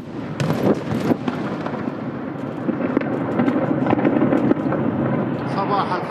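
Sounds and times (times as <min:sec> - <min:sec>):
rumbling crackling blasts from missile strikes: 0:00.0 - 0:06.1.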